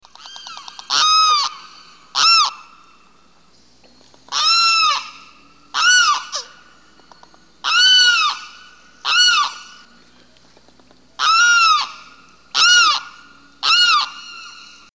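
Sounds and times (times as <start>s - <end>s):
limpkin songs: 0.1s - 14.9s.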